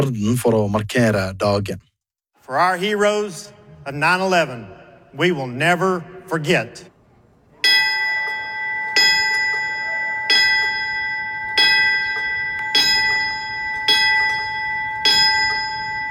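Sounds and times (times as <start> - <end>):
speech: 0.0 - 1.9, 2.5 - 6.9
memorial bell tolling: 7.6 - 16.0.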